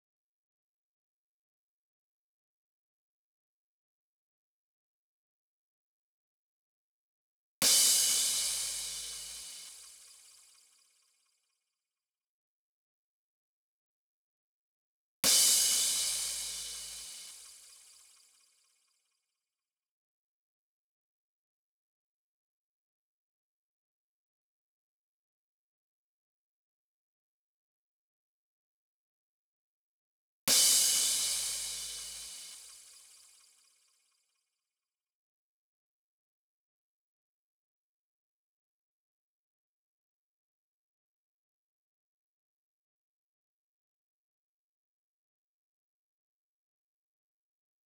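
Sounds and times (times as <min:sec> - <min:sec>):
future house crash cymbals: 0:07.7 - 0:10.5, 0:15.3 - 0:18.1, 0:30.5 - 0:33.4.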